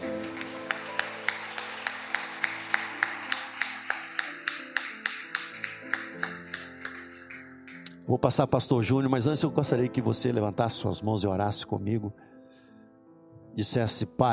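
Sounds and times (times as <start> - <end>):
audience clapping in rhythm: 0.0 - 8.1
speech: 8.1 - 12.3, 13.6 - 14.3.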